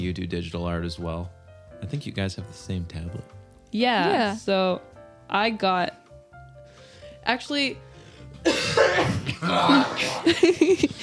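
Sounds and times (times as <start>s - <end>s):
speech: 0.0s - 6.0s, 7.2s - 11.0s
person sneezing: 8.5s - 10.3s
laughter: 9.2s - 11.0s
breathy vocal sounds: 9.4s - 10.4s.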